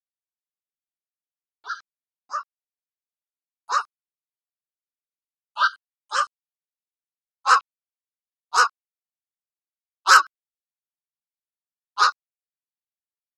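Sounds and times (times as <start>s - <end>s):
Black-crowned Night-Heron calling: 1.6s - 2.5s, 7.5s - 7.7s, 10.1s - 10.3s, 12.0s - 12.2s.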